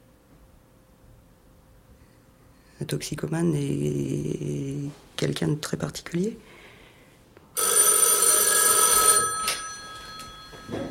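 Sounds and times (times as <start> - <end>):
speech: 2.8 - 6.5
telephone ringing on a hospital ward: 7.6 - 10.8.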